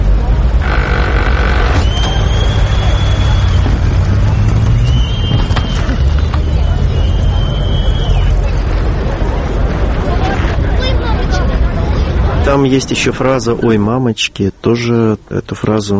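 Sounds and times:
dense crowd murmuring and chattering: 0:00.0 - 0:15.9
sustained whistles: 0:01.6 - 0:08.6
speech: 0:12.6 - 0:15.9.

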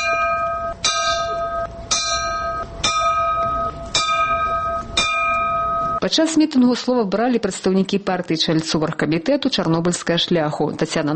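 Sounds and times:
bell tolling at a memorial rally for the Chernobyl disaster: 0:00.0 - 0:06.2
speech: 0:06.0 - 0:11.1.

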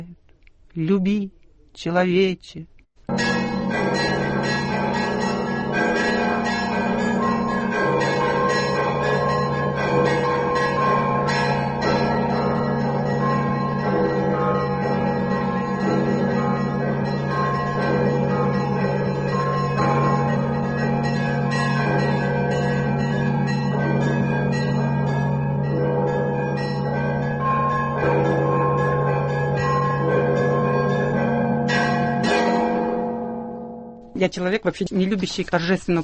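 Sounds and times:
speech: 0:00.8 - 0:02.7, 0:34.2 - 0:36.0
several church bells pealing from a belfry: 0:03.1 - 0:34.1.

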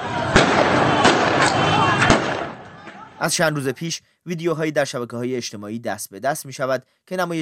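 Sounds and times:
crowd murmur and voices of protesters: 0:00.0 - 0:03.2
gunshots fired into the air to disperse protesters in Afghanistan: 0:00.0 - 0:03.2
speech: 0:03.2 - 0:07.4.

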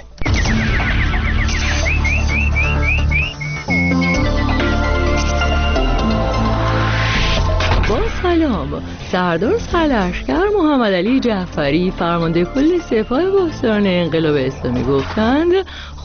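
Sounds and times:
nightingale chirping and whistling: 0:00.0 - 0:06.0
loud dense musical backing: 0:00.0 - 0:16.0
speech: 0:08.4 - 0:16.0.

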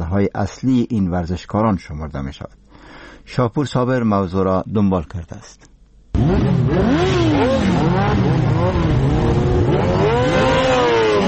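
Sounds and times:
speech: 0:00.1 - 0:10.0
several motorcycle engines roaring and revving while accelerating past: 0:06.1 - 0:11.2.

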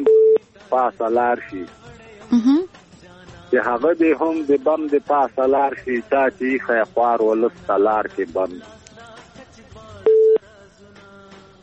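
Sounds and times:
telephone busy tone on a phone line after a call-in connection is cut off: 0:00.0 - 0:00.4, 0:10.1 - 0:10.4
speech: 0:00.7 - 0:02.7, 0:03.5 - 0:08.8.

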